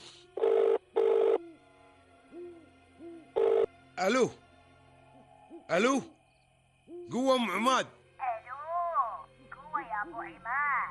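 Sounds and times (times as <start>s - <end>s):
mobile phone in a pocket ringing on a call: 0.4s - 1.4s, 3.4s - 3.7s
speech: 4.0s - 4.4s, 5.7s - 6.2s, 7.1s - 8.0s, 10.0s - 10.8s.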